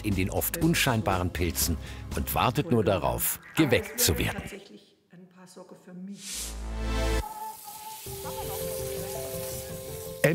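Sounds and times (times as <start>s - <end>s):
speech: 0.0s - 4.8s, 5.5s - 7.2s, 8.0s - 8.9s
small mushroom cakes sizzling in a pan: 6.2s - 10.3s.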